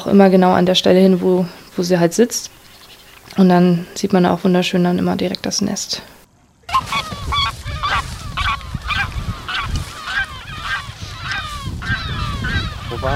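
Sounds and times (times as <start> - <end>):
speech: 0.0 - 2.6, 3.3 - 6.2, 12.9 - 13.1
greylag goose honking as it flies up from its nest: 6.7 - 13.1.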